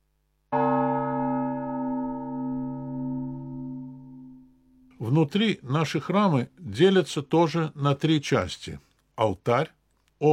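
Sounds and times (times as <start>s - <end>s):
large Russian church bell rung to announce the start of a church service: 0.6s - 4.6s
speech: 5.0s - 10.3s.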